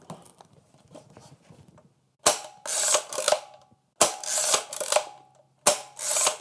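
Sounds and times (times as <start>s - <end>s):
WWII-era American aerial photography camera mechanism whirring and clattering: 2.2s - 6.3s.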